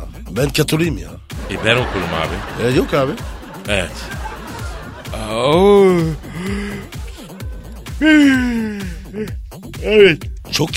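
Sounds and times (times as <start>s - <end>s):
steady pulsing beat: 0.1s - 10.5s
speech: 0.3s - 4.2s, 5.1s - 6.6s, 8.0s - 10.7s
laughter: 1.4s - 9.2s
person yawning with a drawn-out groaning tone: 7.8s - 9.4s.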